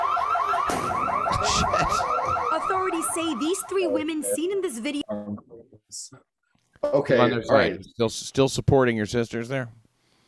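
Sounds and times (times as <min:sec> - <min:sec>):
store alarm wailing in a rapid up-and-down siren pattern: 0:00.0 - 0:05.3
speech: 0:03.0 - 0:09.8.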